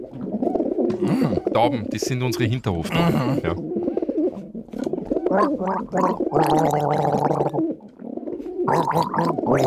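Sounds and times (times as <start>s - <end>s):
person gargling water: 0.1s - 1.6s, 2.9s - 3.8s, 5.2s - 7.6s, 8.7s - 9.6s
speech: 1.0s - 3.8s, 5.3s - 7.7s, 8.7s - 9.6s.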